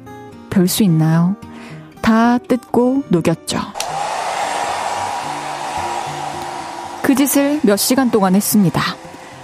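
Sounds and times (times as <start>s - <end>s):
speech: 0.5s - 3.8s, 7.0s - 9.1s
hair dryer blowing with continuous motor roar and faint whine: 3.8s - 9.4s.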